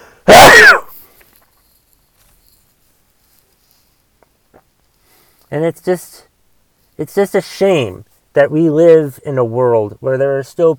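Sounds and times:
loud sneeze: 0.3 - 1.0
speech: 5.5 - 6.3, 7.0 - 10.7.

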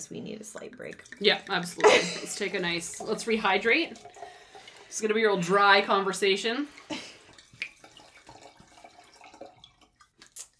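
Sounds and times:
speech: 0.0 - 7.0
Sauvignon Blanc wine pouring into a glass: 0.0 - 10.2.

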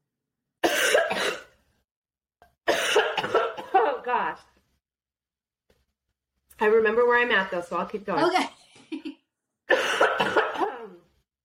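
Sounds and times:
harsh coughing: 0.6 - 1.6, 2.6 - 4.0, 9.7 - 11.1
speech: 4.2 - 4.6, 6.6 - 8.6.

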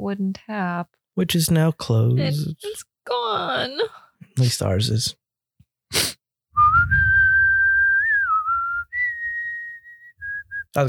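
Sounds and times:
speech: 0.0 - 5.2
person whistling a slow mournful melody from a sad movie: 6.6 - 10.8.

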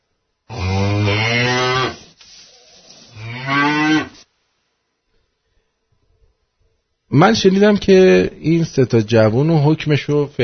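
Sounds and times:
cow mooing: 0.5 - 2.1, 3.2 - 4.2
speech: 7.2 - 10.4.

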